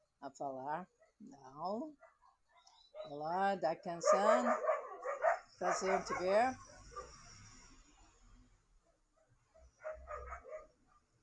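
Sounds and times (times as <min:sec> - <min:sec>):
speech: 0:00.2 - 0:02.1, 0:03.0 - 0:04.7, 0:05.6 - 0:06.7
dog barking at passing garbage truck: 0:04.0 - 0:07.2, 0:09.2 - 0:11.0.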